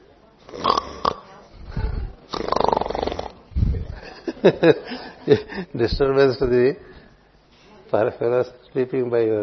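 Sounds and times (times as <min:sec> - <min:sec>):
voice imitating snoring: 0:00.4 - 0:01.3, 0:02.3 - 0:03.4
snorting sounds: 0:00.4 - 0:03.4
laughter: 0:03.8 - 0:05.8
speech: 0:04.4 - 0:06.9, 0:07.9 - 0:09.4.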